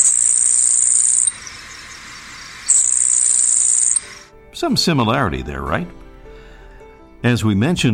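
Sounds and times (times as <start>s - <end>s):
grasshopper sparrow song: 0.0s - 4.3s
speech: 4.6s - 6.0s, 7.2s - 7.9s.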